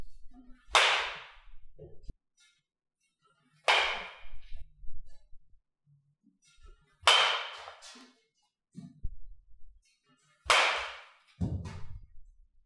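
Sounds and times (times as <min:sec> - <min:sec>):
red 2021 softball bat striking a ball: 0:00.7 - 0:01.4, 0:03.7 - 0:04.4, 0:07.1 - 0:07.9, 0:10.5 - 0:12.0
thuds and rustling: 0:11.4 - 0:12.0.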